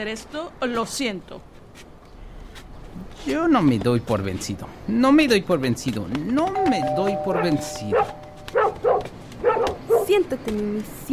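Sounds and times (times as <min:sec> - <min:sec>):
speech: 0:00.0 - 0:01.9, 0:03.0 - 0:11.1
small pet dog barking at visitors: 0:07.3 - 0:10.2.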